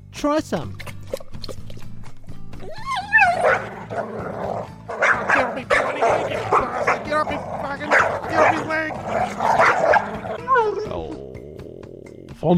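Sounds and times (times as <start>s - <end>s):
speech: 0.2s - 0.8s, 2.6s - 11.2s, 12.4s - 12.5s
dog barking and yelping excitedly: 2.6s - 11.0s.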